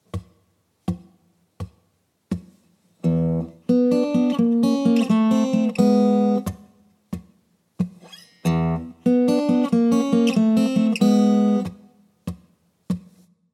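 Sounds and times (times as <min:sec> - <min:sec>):
blues guitar turnaround: 0:03.0 - 0:07.2, 0:07.9 - 0:11.9.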